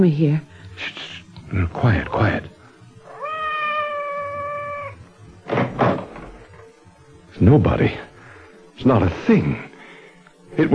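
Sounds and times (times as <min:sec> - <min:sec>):
speech: 0:00.0 - 0:02.6, 0:07.4 - 0:08.1, 0:08.8 - 0:09.7, 0:10.6 - 0:10.7
cat meowing outside a door: 0:03.0 - 0:05.1.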